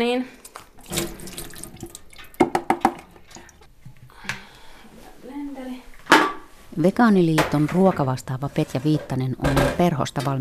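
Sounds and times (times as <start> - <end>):
speech: 0.0 - 1.4, 6.8 - 10.3
water running from a tap into a sink: 0.8 - 3.6.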